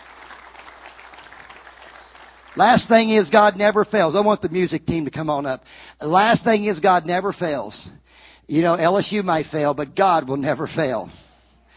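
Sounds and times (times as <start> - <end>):
church congregation applauding during a sermon: 0.0 - 4.8
speech: 2.6 - 11.2.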